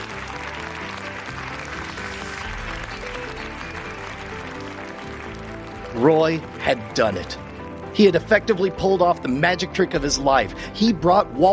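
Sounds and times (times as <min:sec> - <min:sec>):
large crowd cheering and applauding: 0:00.0 - 0:08.7
speech: 0:06.0 - 0:07.4, 0:08.0 - 0:11.5.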